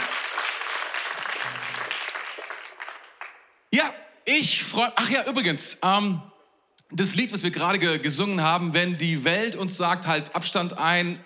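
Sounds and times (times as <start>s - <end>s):
crowd applause: 0.0s - 3.5s
speech: 3.8s - 6.3s, 6.9s - 11.2s.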